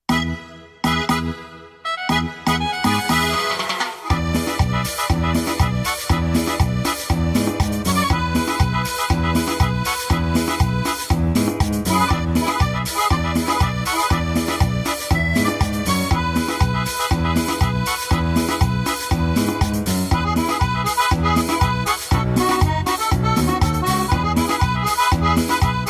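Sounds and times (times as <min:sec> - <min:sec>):
cumbia music: 0:00.0 - 0:25.8.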